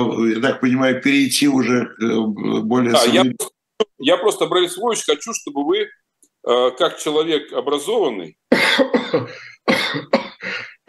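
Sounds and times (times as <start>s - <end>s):
speech: 0.0s - 10.2s
man coughing with throat clearing: 8.5s - 10.8s.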